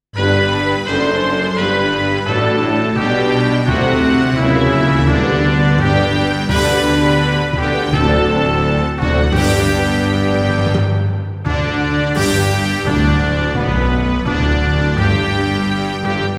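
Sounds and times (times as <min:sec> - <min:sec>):
brass band playing: 0:00.1 - 0:16.3.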